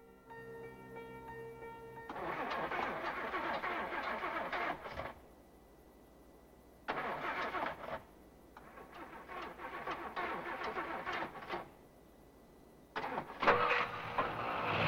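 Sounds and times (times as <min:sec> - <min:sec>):
car engine cranking: 0:02.1 - 0:05.2, 0:06.9 - 0:11.7, 0:13.0 - 0:14.8
car engine running as the car pulls away across a field: 0:13.7 - 0:14.8.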